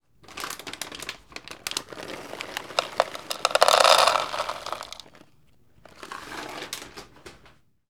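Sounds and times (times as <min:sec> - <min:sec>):
dry cat food pouring: 0:01.0 - 0:05.2.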